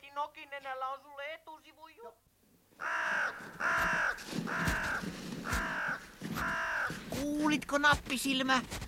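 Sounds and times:
speech: 0.2 - 8.8
crow cawing: 2.8 - 7.2.

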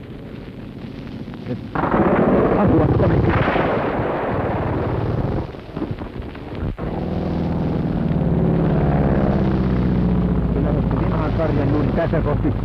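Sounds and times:
two fighter planes roaring in low: 0.0 - 12.6
speech: 1.5 - 3.7, 12.0 - 12.6
fighter plane machine-gun fire: 1.7 - 7.0.

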